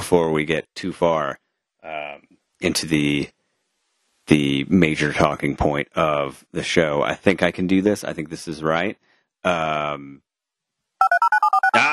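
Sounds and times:
speech: 0.1 - 3.4, 4.3 - 10.3
telephone touch-tone dialing beeps of alternating pitch: 11.0 - 11.8
brief sustained telephone buzzing tone: 11.0 - 11.9.

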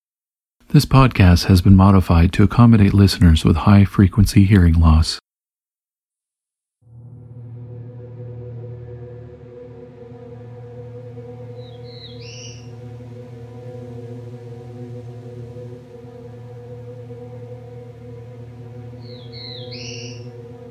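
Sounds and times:
speech: 0.7 - 5.2
steady loud low hum: 6.8 - 20.6
Black-throated Blue Warbler song of short buzzy high phrases: 9.5 - 20.6.

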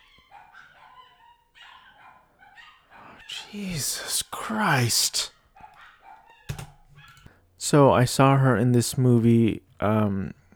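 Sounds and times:
dogs barking and yipping: 0.0 - 7.4
speech: 3.5 - 5.4, 7.7 - 10.4.

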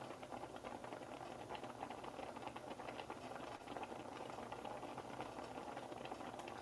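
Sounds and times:
pot of quinoa bubbling on the stove: 0.0 - 6.5.

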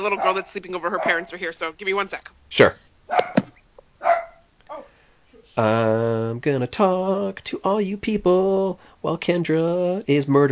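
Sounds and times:
dog barking: 0.0 - 1.4, 3.1 - 5.0
speech: 0.0 - 3.2, 5.6 - 10.5.

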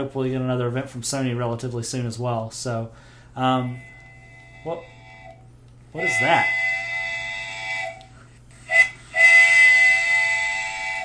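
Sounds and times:
speech: 0.0 - 3.9, 4.6 - 4.9, 6.0 - 6.6
steam train whistle blasts: 3.5 - 11.0.

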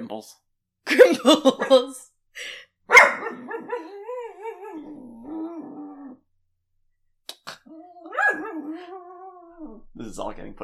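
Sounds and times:
speech: 0.1 - 4.0, 10.0 - 10.6
dog barking: 2.9 - 4.0, 8.1 - 8.9
dog half-growling grumbles: 3.4 - 6.2, 7.6 - 10.0.

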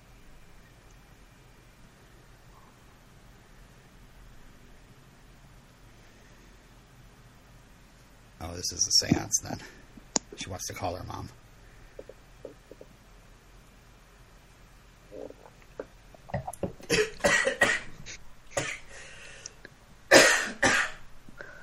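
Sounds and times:
faint breathing: 5.8 - 6.8, 18.8 - 19.7, 21.3 - 21.6
speech: 8.5 - 9.8, 10.4 - 11.4
person coughing after inhaling wine: 16.4 - 17.9, 18.6 - 18.9, 20.1 - 21.0.

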